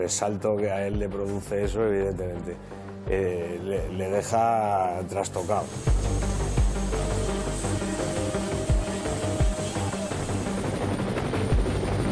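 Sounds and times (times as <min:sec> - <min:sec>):
speech: 0:00.0 - 0:06.2
helicopter flying: 0:05.4 - 0:12.1.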